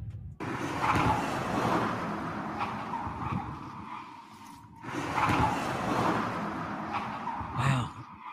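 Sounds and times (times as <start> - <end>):
car speeding past: 0.4 - 4.1, 4.9 - 8.3.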